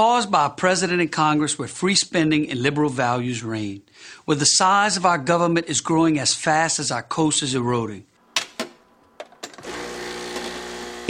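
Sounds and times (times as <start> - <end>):
speech: 0.0 - 8.1
espresso machine steaming milk: 9.6 - 11.0.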